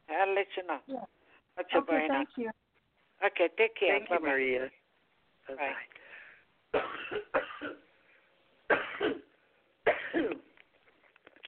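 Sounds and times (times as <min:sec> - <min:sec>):
speech: 0:00.2 - 0:02.6, 0:03.2 - 0:04.8, 0:05.5 - 0:06.0, 0:06.7 - 0:07.8
person coughing harshly: 0:06.8 - 0:07.8, 0:08.7 - 0:09.3, 0:09.9 - 0:10.5.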